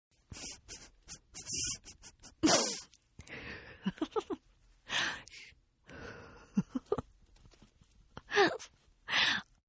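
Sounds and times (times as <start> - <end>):
woman giggling: 0.4 - 3.0, 3.8 - 4.5, 6.4 - 7.1.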